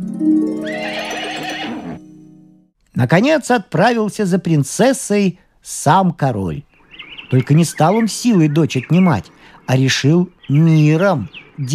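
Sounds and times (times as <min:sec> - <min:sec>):
horse neighing: 0:00.6 - 0:02.2
speech: 0:03.0 - 0:06.7, 0:07.3 - 0:11.7.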